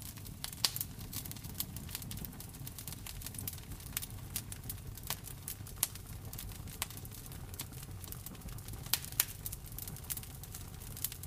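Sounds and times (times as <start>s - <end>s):
fire crackling in a fireplace: 0.0s - 11.2s
low rumble and soft hiss of burning wood: 0.0s - 11.2s.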